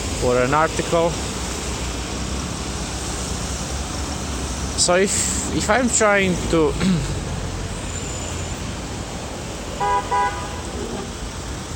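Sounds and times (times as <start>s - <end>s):
commuter traffic passing cars on a road: 0.0s - 11.7s
speech: 0.2s - 1.3s, 4.8s - 7.2s
car horn toots: 9.8s - 10.7s.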